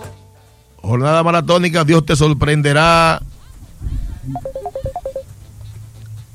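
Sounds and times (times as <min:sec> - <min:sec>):
speech: 0:00.9 - 0:04.6
phone incoming-call ringtone of short bright electronic beeps: 0:04.3 - 0:05.2.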